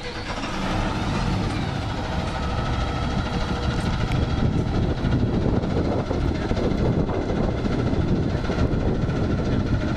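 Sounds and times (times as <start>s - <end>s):
vehicle engine starting and running: 0.0s - 9.9s.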